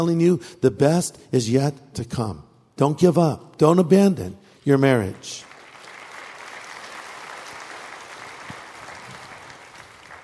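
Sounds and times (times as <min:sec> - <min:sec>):
speech: 0:00.0 - 0:05.5
audience applause: 0:05.4 - 0:10.2.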